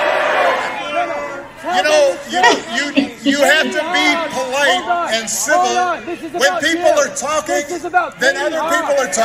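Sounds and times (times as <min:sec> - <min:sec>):
rally crowd murmuring voices: 0:00.2 - 0:09.2
laughter: 0:01.8 - 0:07.6
heckler yelling at a rally: 0:02.4 - 0:05.1
speech: 0:04.6 - 0:09.2.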